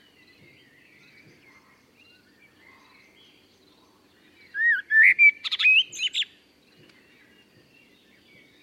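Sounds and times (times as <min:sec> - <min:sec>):
Common blackbird Turdus merula singing flute-like whistles and squeaky twitters: 0:04.5 - 0:06.3.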